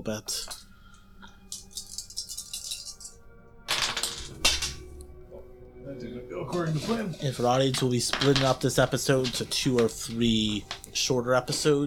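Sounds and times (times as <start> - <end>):
speech: 0.0 - 0.6, 5.9 - 11.8
eight-sided dice clattering across a tabletop: 1.5 - 3.1, 3.7 - 4.8, 7.4 - 11.0.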